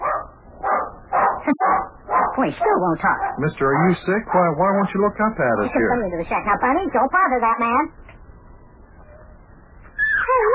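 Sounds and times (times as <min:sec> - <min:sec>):
dog barking: 0:00.0 - 0:04.2
speech: 0:01.5 - 0:08.1.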